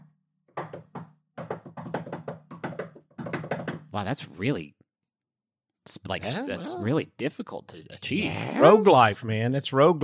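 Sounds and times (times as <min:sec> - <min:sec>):
secret knock tapped on a hard surface: 0:00.5 - 0:03.9
speech: 0:03.9 - 0:04.8, 0:05.8 - 0:10.0.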